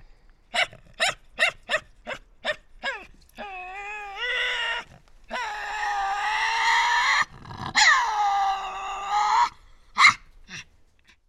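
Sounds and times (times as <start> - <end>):
Tasmanian devils whining and snorting in an enclosure disputing priority: 2.8 - 11.2.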